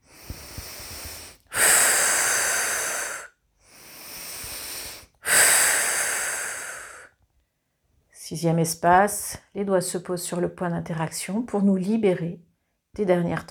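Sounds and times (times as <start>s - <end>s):
slow breathing during a guided relaxation exercise: 0.0s - 7.2s
speech: 8.3s - 13.4s.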